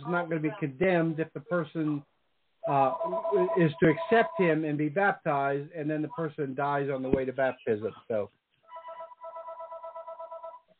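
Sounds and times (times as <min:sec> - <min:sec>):
speech: 0:00.1 - 0:08.4
telephone ringing with a rapid warbling electronic trill: 0:02.8 - 0:04.6, 0:08.7 - 0:10.6.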